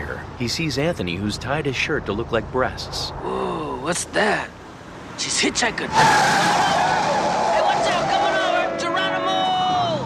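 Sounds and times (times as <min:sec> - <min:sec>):
car engine and road noise swerving through a U-turn across traffic: 0:00.0 - 0:10.0
speech: 0:00.4 - 0:04.6, 0:05.2 - 0:06.7
car tire squeal: 0:05.9 - 0:09.8.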